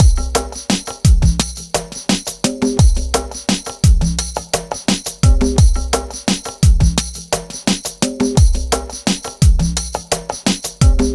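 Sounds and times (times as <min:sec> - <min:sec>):
downtempo beats: 0:00.0 - 0:11.1.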